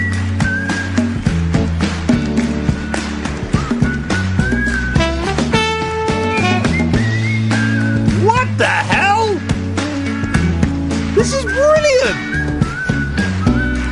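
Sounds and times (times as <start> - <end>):
wavering off-pitch whistled melody: 0.0 - 1.4, 2.9 - 8.2, 11.2 - 13.8
full steady band backing: 0.2 - 13.8.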